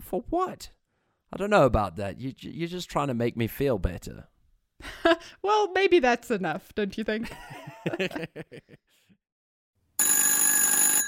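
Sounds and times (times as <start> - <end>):
speech: 0.1 - 9.2
person chuckling quietly: 7.3 - 9.0
telephone bell ringing: 10.0 - 11.0.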